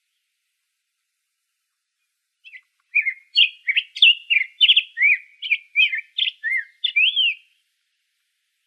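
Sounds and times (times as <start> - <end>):
black-headed grosbeak warbled song recorded in Arizona: 2.4 - 7.6.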